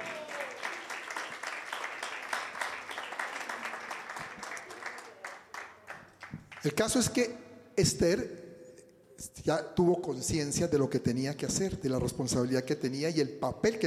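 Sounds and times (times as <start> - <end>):
audience applause: 0.0 - 6.7
speech: 6.6 - 8.4, 9.2 - 13.8.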